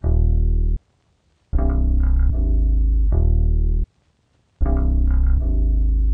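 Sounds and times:
dark bass melody loop in D sharp minor: 0.0s - 0.8s, 1.6s - 3.8s, 4.6s - 6.1s.

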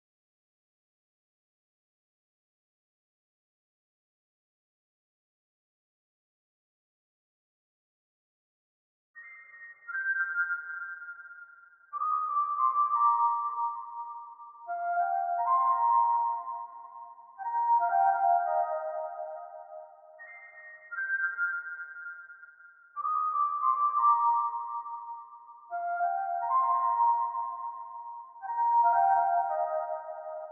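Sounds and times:
87 BPM C minor flute lead melody in RnB: 12.0s - 22.2s, 23.0s - 30.5s.

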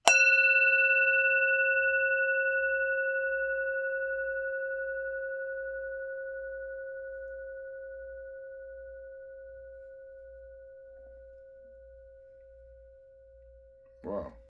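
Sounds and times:
high bell clang with resonance: 0.0s - 5.3s.

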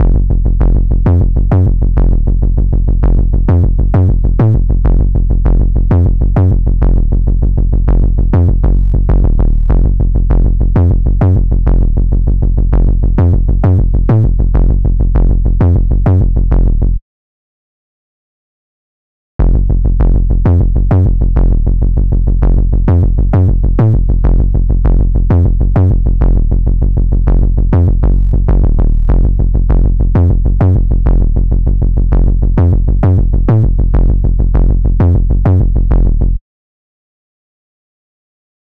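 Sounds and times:
sub bass melody loop in F minor: 0.0s - 17.0s, 19.4s - 36.4s.

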